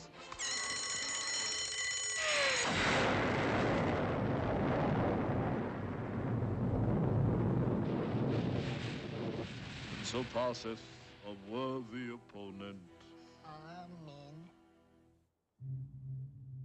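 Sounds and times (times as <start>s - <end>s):
ringing bell-like tone: 0.2s - 2.8s
bomb explosion: 2.6s - 11.2s
speech: 10.2s - 12.9s.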